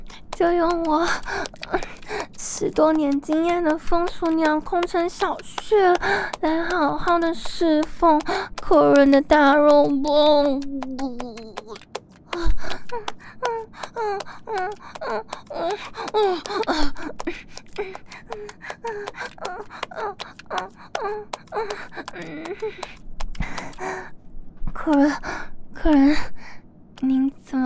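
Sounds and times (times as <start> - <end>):
rapid heavy panting breaths with gasps and soft moans: 0.0 - 2.6, 5.4 - 7.1, 8.2 - 8.6, 12.2 - 24.1
speech: 0.4 - 11.1, 14.0 - 27.6.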